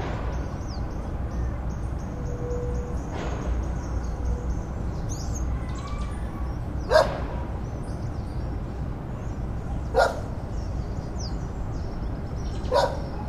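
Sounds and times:
faint birdsong: 0.0 - 13.2
steady outdoor hum: 0.0 - 13.2
dogs barking: 5.4 - 7.6, 9.8 - 10.8, 12.6 - 13.2.

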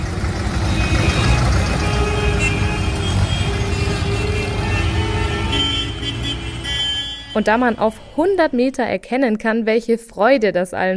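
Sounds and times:
many tractors rumbling and chugging around a roundabout: 0.0 - 8.4
speech: 7.4 - 10.9.

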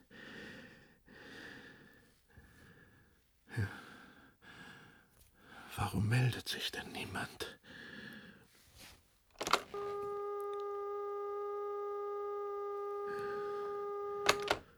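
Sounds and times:
speech: 3.6 - 3.8, 5.8 - 7.9
clicks and clunks of a telephone receiver being lifted and set down: 9.4 - 9.8, 14.2 - 14.7
steady telephone dial tone: 9.4 - 14.7.

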